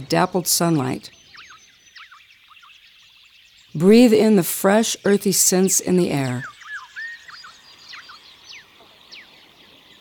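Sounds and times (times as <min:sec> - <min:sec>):
speech: 0:00.0 - 0:01.2, 0:03.8 - 0:06.6
several birds chirping and whistling in a quiet forest: 0:01.1 - 0:03.7, 0:06.3 - 0:09.9.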